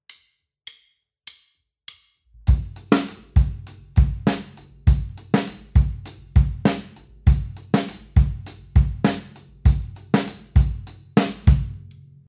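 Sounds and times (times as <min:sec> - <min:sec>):
clave rhythm on percussion: 0:02.5 - 0:11.8.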